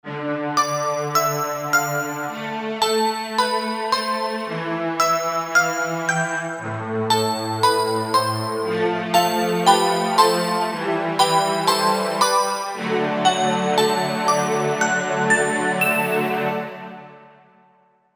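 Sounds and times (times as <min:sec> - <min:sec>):
Korg MSC-1S synth strings, piano and bell: 0:00.6 - 0:17.5.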